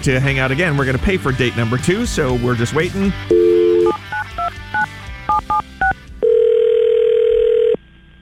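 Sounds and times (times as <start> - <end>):
speech: 0.0 - 3.4
touch-tone beeps of a phone being dialed: 3.3 - 7.8.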